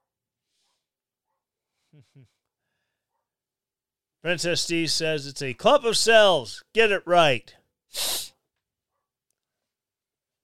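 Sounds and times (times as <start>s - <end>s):
speech: 2.0s - 2.5s, 4.2s - 8.2s
person sniffing through the nose: 7.9s - 8.4s.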